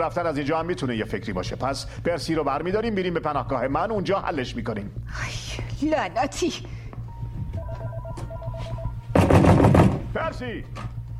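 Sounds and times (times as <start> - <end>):
speech: 0.0 - 6.8, 10.2 - 11.0
faint steady hum: 0.0 - 9.2
landline telephone ringing with a rattling bell: 7.4 - 9.1.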